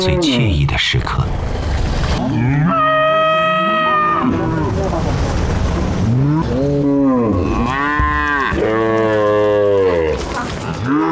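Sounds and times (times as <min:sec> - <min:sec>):
speech: 0:00.0 - 0:01.6
herd of Yunling crossbred cattle mooing: 0:02.2 - 0:05.1, 0:05.8 - 0:11.1.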